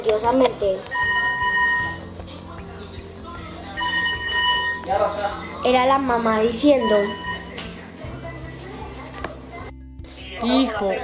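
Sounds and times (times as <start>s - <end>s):
speech: 0.0s - 1.0s, 4.9s - 7.2s, 10.4s - 11.0s
telephone bell ringing: 0.9s - 2.1s, 3.8s - 4.9s, 6.8s - 7.6s.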